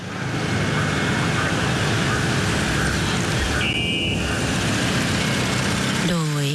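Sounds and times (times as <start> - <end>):
car engines of royal motorcade moving slowly along tree-lined Ratchadamnoen Road: 0.0 - 6.5.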